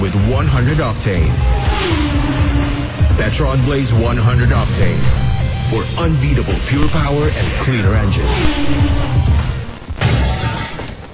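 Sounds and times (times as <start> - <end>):
speech: 0.0 - 2.4, 3.2 - 9.3
glass shattering into many pieces: 10.0 - 11.1.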